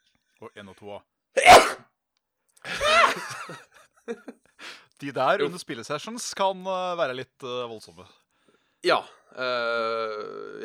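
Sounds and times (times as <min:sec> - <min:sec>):
speech: 0:00.4 - 0:01.8, 0:02.7 - 0:08.2, 0:08.8 - 0:10.6
sneeze: 0:01.4 - 0:01.9
laughter: 0:02.6 - 0:04.4.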